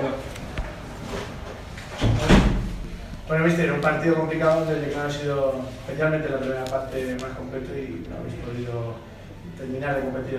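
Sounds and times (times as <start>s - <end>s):
door opening or closing: 1.2s - 2.9s
speech: 3.3s - 10.3s.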